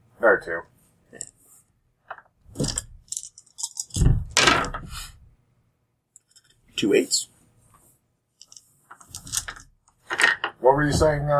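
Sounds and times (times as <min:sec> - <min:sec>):
speech: 0:00.2 - 0:01.3, 0:06.8 - 0:07.3, 0:10.6 - 0:11.3
dice clattering against a hard surface: 0:02.1 - 0:04.0, 0:08.4 - 0:10.6.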